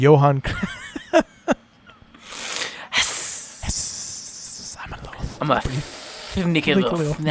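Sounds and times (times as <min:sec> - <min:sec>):
people talking: 0:00.0 - 0:00.8, 0:02.9 - 0:07.2
laughter: 0:00.4 - 0:02.1
voice imitating a snake's hiss: 0:02.2 - 0:07.2.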